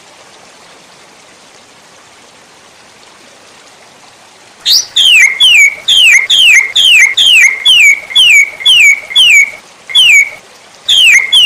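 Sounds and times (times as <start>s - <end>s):
white-rumped shama song with rising note and downward whistle: 4.6s - 11.4s.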